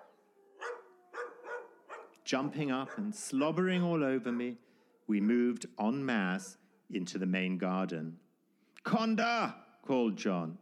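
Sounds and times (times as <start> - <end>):
dogs barking and snapping at wheels: 0.0 - 3.4, 4.0 - 5.1, 6.2 - 6.8
speech: 2.3 - 8.2, 8.8 - 10.6.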